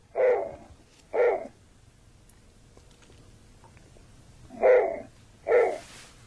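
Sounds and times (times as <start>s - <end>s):
snowy owl barking calls: 0.0s - 1.6s, 4.5s - 5.9s
quiet noise: 0.0s - 6.2s.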